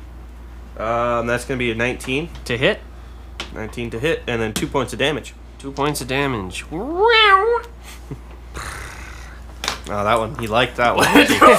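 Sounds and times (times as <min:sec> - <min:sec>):
speech: 0:00.8 - 0:02.9, 0:03.5 - 0:08.2, 0:09.9 - 0:11.5
cat meowing: 0:06.8 - 0:07.7
laughter: 0:11.0 - 0:11.5.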